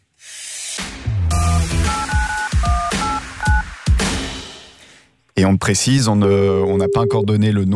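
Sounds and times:
telephone keypad tones of a number being dialed: 1.4s - 3.6s, 6.8s - 7.3s
speech: 5.4s - 7.7s.

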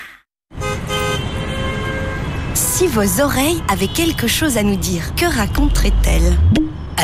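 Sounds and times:
several car horns honking in a traffic jam: 0.5s - 3.1s
rumble of engines in heavy traffic: 0.6s - 7.0s
speech: 2.9s - 7.0s.

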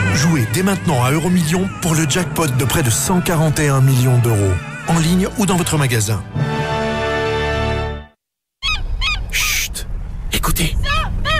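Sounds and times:
music: 0.0s - 8.2s
speech: 0.2s - 6.4s, 10.6s - 10.8s
seagulls calling: 8.6s - 9.7s.

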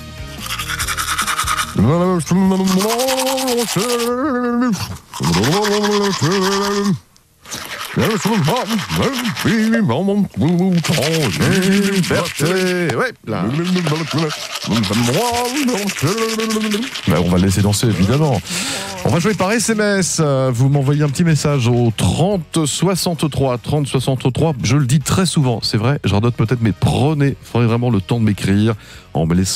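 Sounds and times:
toothbrush bristles scrubbing teeth: 0.4s - 22.3s
person singing a muffled warbling tune while brushing teeth: 1.7s - 7.0s, 8.0s - 19.4s
speech: 1.8s - 7.1s, 8.0s - 29.5s.

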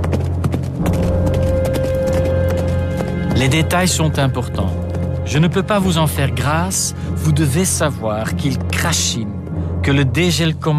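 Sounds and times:
horse hooves galloping: 0.0s - 5.6s
speech: 3.4s - 10.7s.

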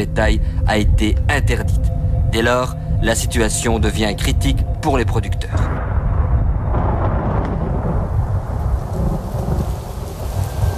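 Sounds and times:
speech: 0.0s - 5.7s
deep continuous rumble of thunder: 5.4s - 10.7s
steady heavy June rain in Belgium: 5.7s - 10.7s.

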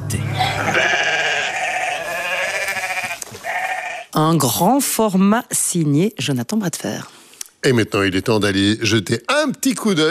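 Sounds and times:
sheep bleating: 0.1s - 4.2s
speech: 4.2s - 10.0s.

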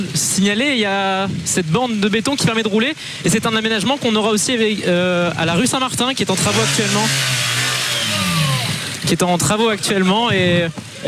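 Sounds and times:
speech: 0.0s - 7.6s, 9.1s - 11.0s
engine of camera crew vehicle passing cyclists on a shopping street: 6.3s - 9.2s.

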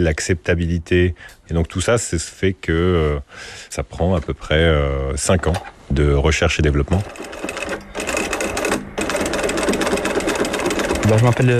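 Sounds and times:
speech: 0.0s - 7.8s, 11.1s - 11.5s
sewing machine stitching a strap with a quick-release buckle using thick thread: 6.9s - 11.5s.

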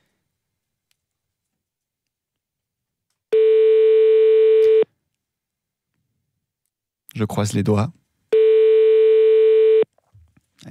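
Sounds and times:
steady single-pitch telephone beeps while calling back a number: 3.3s - 4.9s, 8.3s - 9.9s
speech: 7.2s - 8.0s.

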